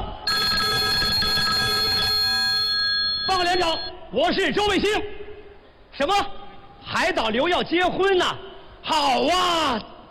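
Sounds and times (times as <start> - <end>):
telephone ringing while placing a call: 0.3 - 3.9
speech: 3.6 - 5.2, 6.0 - 9.9.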